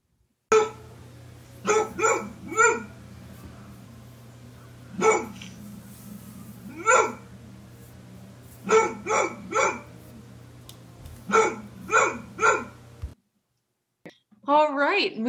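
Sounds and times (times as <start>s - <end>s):
German Shorthaired Pointer barking: 0.5s - 1.0s, 1.6s - 3.4s, 4.9s - 5.7s, 6.6s - 7.3s, 8.6s - 10.1s, 11.2s - 12.9s
steady low hum: 0.5s - 13.2s
speech: 15.0s - 15.2s.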